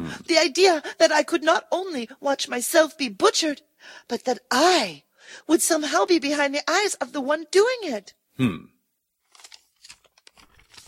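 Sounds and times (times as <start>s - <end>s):
speech: 0.1s - 8.7s
paper being crumpled and crinkled in hands: 9.2s - 10.8s.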